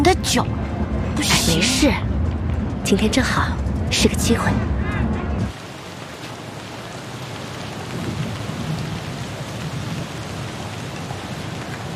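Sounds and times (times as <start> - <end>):
steady rain: 0.0 - 11.9
speech: 0.2 - 2.1, 2.8 - 4.8
distant thunder: 7.7 - 11.3.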